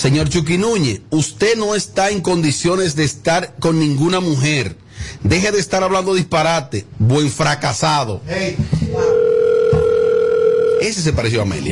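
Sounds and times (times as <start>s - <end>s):
speech: 0.0s - 9.2s, 10.8s - 11.7s
telephone dial tone while placing a call: 9.1s - 10.8s.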